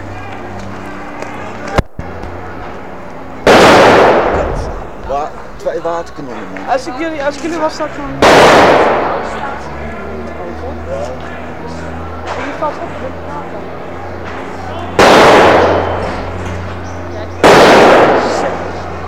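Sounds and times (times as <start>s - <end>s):
indistinct voices: 0.0s - 19.0s
strijker firecracker blasts: 3.4s - 5.0s, 8.1s - 9.6s, 14.9s - 16.4s, 17.4s - 19.0s
speech: 5.8s - 9.7s, 12.6s - 13.8s.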